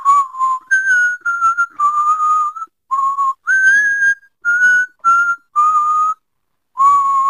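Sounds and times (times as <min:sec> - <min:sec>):
person whistling a melody in sustained notes: 0:00.0 - 0:06.2, 0:06.8 - 0:07.2.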